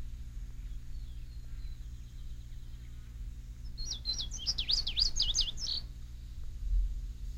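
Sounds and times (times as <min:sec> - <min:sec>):
indigo bunting song: 0:00.0 - 0:06.4
low steady hum: 0:00.0 - 0:07.3
faint chirps: 0:00.4 - 0:06.0.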